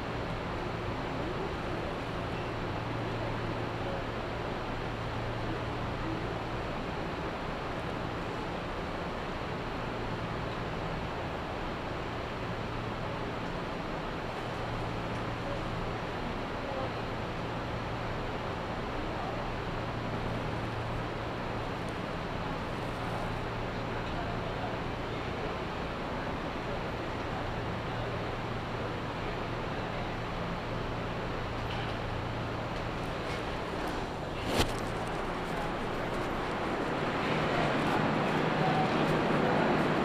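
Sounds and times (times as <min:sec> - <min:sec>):
steady low rumble aboard a local train on a suburban line: 0:00.0 - 0:40.0.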